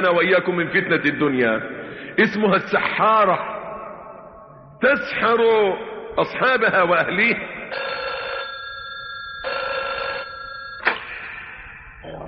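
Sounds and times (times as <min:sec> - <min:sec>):
speech: 0:00.0 - 0:03.5, 0:04.8 - 0:08.0
telephone ringing with electronic bell bursts: 0:07.7 - 0:11.1
sharp click: 0:10.8 - 0:11.1.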